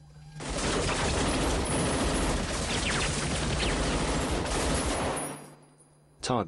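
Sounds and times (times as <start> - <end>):
gunfire from young soldiers shooting at targets on an indoor firing range: 0.4 - 5.4.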